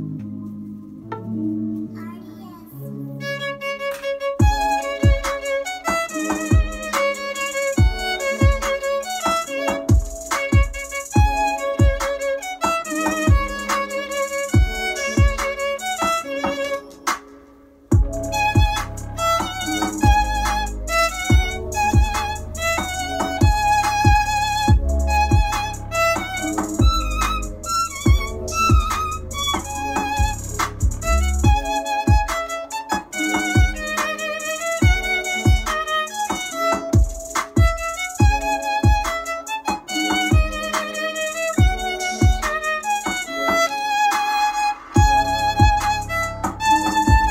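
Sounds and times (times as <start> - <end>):
violin version of a song: 1.1 - 17.3, 17.9 - 47.2.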